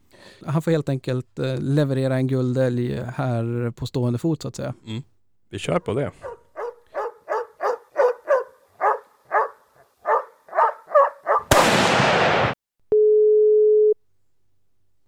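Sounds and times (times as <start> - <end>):
speech: 0.4 - 6.4
dog barking: 6.2 - 11.5
steady phone call ringing tone: 12.9 - 14.0.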